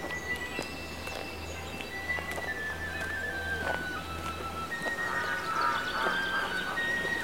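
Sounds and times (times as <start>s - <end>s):
steady outdoor background: 0.0s - 7.2s
ducks quacking on a pond in early spring: 5.0s - 7.2s.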